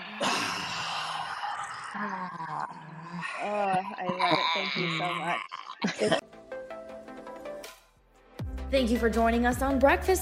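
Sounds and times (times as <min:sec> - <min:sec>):
deep breath in through the nose and out through the mouth: 0:00.0 - 0:03.6
speech: 0:02.0 - 0:06.2, 0:08.7 - 0:10.2.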